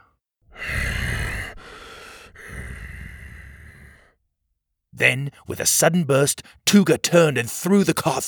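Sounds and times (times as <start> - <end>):
scarred scaly creature's raspy labored breathing: 0.5 - 4.2
speech: 5.0 - 8.2.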